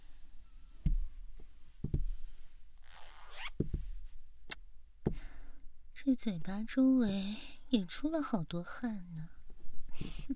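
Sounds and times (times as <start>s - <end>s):
soft dull thumps and knocks of handling: 0.8s - 2.4s, 3.6s - 4.2s, 5.0s - 5.3s
zipper on the mouth of a tight latex suit being unzipped: 2.8s - 3.6s
speech: 6.0s - 9.4s, 10.0s - 10.3s.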